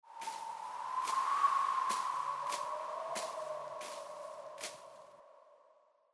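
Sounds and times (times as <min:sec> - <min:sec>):
tumbleweed blowing: 0:00.1 - 0:05.0.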